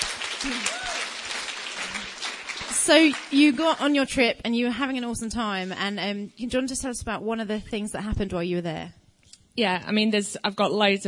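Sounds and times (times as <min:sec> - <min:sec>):
voice over applause: 0:00.0 - 0:03.4
audience applause: 0:00.0 - 0:04.0
speech: 0:00.4 - 0:00.7, 0:02.9 - 0:09.0, 0:09.6 - 0:11.0.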